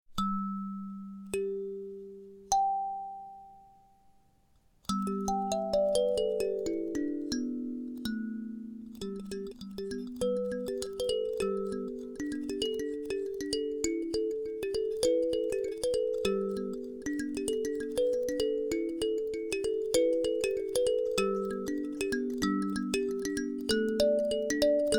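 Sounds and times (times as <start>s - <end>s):
kalimba playing G pentatonic scale: 0.2s - 4.0s, 4.9s - 24.9s.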